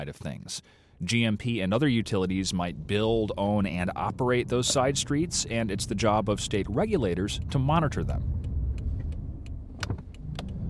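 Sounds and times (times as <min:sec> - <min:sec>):
speech: 0:00.0 - 0:08.4
car engine idling: 0:01.2 - 0:10.6.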